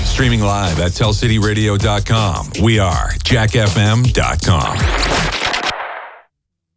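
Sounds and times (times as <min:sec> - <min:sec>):
speech: 0:00.2 - 0:05.1
rapid burst of gunfire in Richmond: 0:04.8 - 0:06.2.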